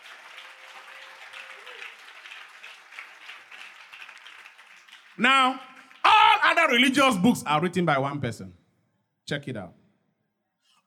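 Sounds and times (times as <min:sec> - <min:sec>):
audience applauding in a large room: 0:00.0 - 0:07.0
speech: 0:05.2 - 0:05.7, 0:06.5 - 0:08.6, 0:09.3 - 0:09.8.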